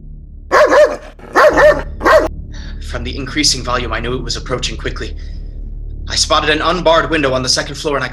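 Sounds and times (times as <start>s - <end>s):
dog barking angrily: 0.5s - 2.3s
speech: 2.9s - 5.4s, 6.1s - 8.1s.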